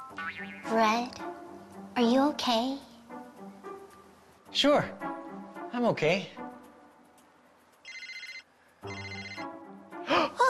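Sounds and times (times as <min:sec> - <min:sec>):
speech: 0:00.1 - 0:02.9, 0:04.5 - 0:05.1, 0:05.7 - 0:06.4
cell phone ringing in electronic trilling bursts: 0:07.8 - 0:09.6.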